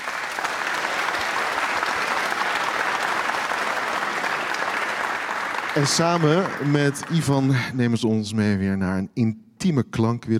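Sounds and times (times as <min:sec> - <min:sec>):
large concert audience applauding a violinist: 0:00.0 - 0:08.0
speech: 0:05.8 - 0:10.3.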